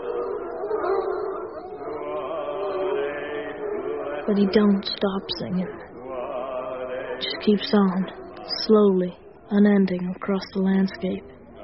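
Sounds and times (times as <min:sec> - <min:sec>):
several hound dogs howling together: 0:00.0 - 0:04.5
speech: 0:04.3 - 0:05.9, 0:07.2 - 0:11.4.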